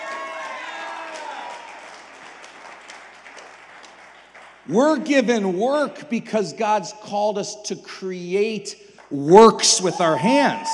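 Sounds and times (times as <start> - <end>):
audience applauding: 0.0 - 5.2
speech: 4.7 - 10.7.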